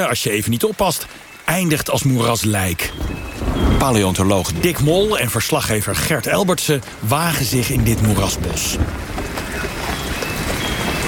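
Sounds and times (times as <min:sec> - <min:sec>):
speech: 0:00.0 - 0:09.2
warm rain shower in a swamp forest: 0:00.0 - 0:11.0.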